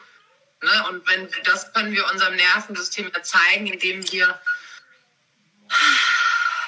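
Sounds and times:
speech: 0:00.7 - 0:04.5
slow relaxed breathing with a short inhale and long airy exhale: 0:04.5 - 0:04.9, 0:05.7 - 0:06.6.

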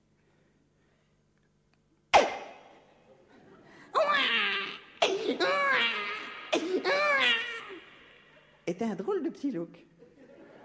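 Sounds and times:
brief sharp sound: 0:02.2 - 0:02.7
newborn baby's first cry: 0:04.0 - 0:08.2
speech: 0:08.7 - 0:09.9
laughter: 0:10.0 - 0:10.6.

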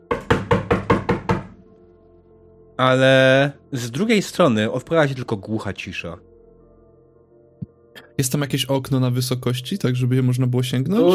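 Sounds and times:
loud forceful knocking on a door: 0:00.0 - 0:01.6
speech: 0:02.8 - 0:06.3, 0:08.2 - 0:11.1.

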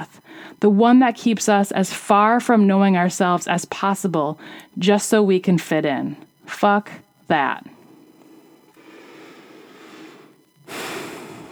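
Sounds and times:
speech: 0:00.0 - 0:07.8
deep breath: 0:00.2 - 0:00.6, 0:04.4 - 0:04.8, 0:08.2 - 0:11.5.

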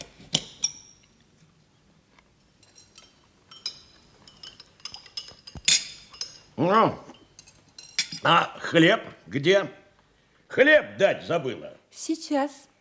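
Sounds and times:
spoon clinking against a soup bowl as a man eats soup: 0:00.4 - 0:01.1, 0:02.6 - 0:06.5, 0:07.1 - 0:08.3
speech: 0:06.6 - 0:07.0, 0:08.2 - 0:09.8, 0:10.6 - 0:12.7.

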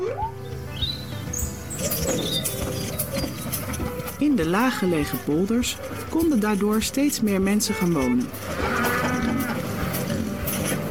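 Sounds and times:
outdoor noise: 0:00.0 - 0:10.8
speech: 0:04.2 - 0:08.7
cow mooing: 0:07.8 - 0:10.2.

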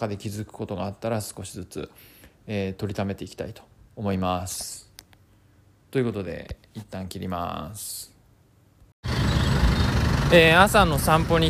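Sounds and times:
speech: 0:00.0 - 0:04.8, 0:05.9 - 0:08.1, 0:10.3 - 0:11.4
cars passing in busy street traffic: 0:09.0 - 0:11.4.

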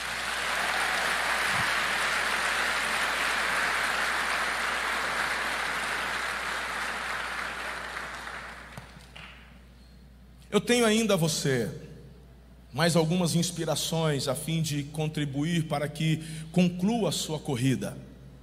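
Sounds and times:
large audience applauding: 0:00.0 - 0:09.5
speech: 0:10.5 - 0:11.8, 0:12.8 - 0:18.0.

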